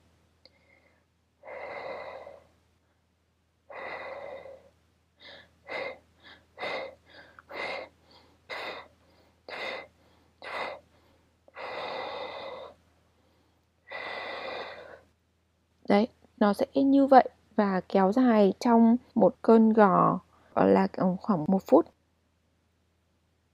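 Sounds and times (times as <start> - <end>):
person doing long slow labor breaths in through the nose and out through the mouth: 0.4 - 15.2
person doing short rhythmic labor breathing puffs: 3.7 - 15.2
speech: 15.9 - 22.0.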